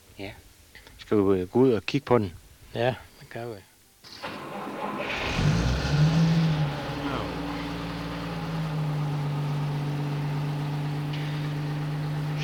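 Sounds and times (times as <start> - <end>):
speech: 0.2 - 0.5, 1.1 - 4.3
heavy 1953 Opel Blitz truck engine starting and idling: 4.1 - 12.4.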